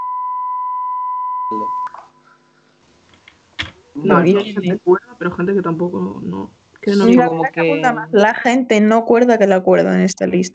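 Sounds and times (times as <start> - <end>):
electronic beep: 0.0 - 2.2
speech: 1.5 - 2.1, 4.0 - 10.5.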